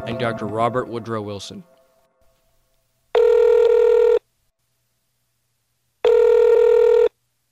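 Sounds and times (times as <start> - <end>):
speech: 0.0 - 1.7
buzzing telephone ring tones on the line: 3.2 - 4.2, 6.0 - 7.1.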